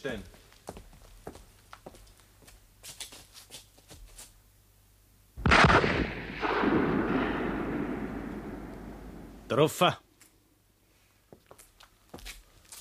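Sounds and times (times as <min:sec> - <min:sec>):
loaded gun firing a shot: 0:05.4 - 0:09.5
sharp burst: 0:05.4 - 0:09.6.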